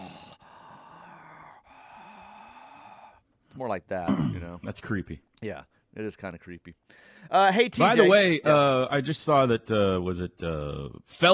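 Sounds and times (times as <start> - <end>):
person imitating loud heavy breathing: 0.0 - 3.5, 6.9 - 7.3
speech: 3.6 - 11.3.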